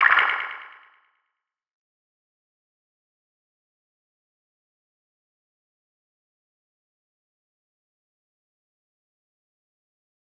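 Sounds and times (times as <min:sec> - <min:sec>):
wobbly ambient sound effect: 0:00.0 - 0:00.9.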